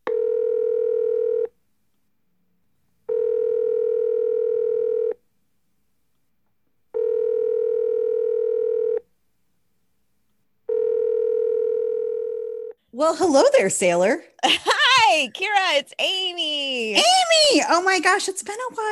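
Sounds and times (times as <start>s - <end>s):
outgoing call telephone ringing tone: 0.1s - 1.5s, 3.1s - 5.2s, 7.0s - 9.0s, 10.7s - 12.8s
speech: 13.0s - 18.9s.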